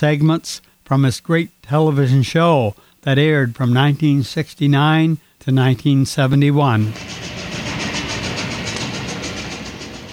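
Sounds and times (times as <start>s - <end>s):
speech: 0.0s - 7.2s
train rumbling along the rails: 6.9s - 10.1s.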